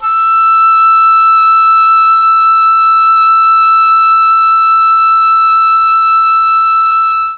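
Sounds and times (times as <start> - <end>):
mellotron oboe note E4: 0.0 - 7.3.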